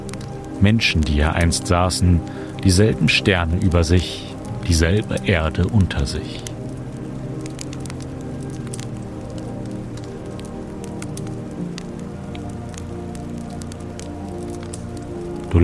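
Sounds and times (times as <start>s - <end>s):
river water rushing: 0.0s - 15.6s
speech: 0.6s - 6.5s.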